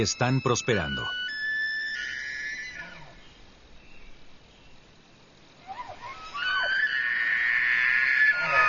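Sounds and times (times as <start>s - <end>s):
speech: 0.0s - 1.3s
Manitoba elk bugling a mating call in a park: 0.0s - 3.4s, 5.6s - 8.6s.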